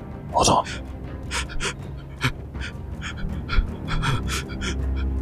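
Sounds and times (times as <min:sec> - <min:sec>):
speech: 0:00.3 - 0:01.8
voice imitating rapid light frantic panting: 0:00.3 - 0:05.1.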